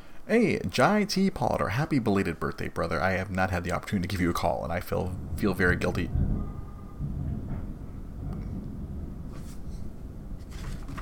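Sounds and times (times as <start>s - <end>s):
speech: 0.3s - 6.6s
long low rolling thunder: 4.2s - 11.0s.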